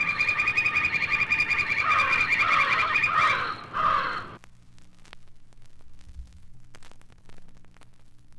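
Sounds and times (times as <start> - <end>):
crows calling loudly in harsh caws: 0.0 - 4.4.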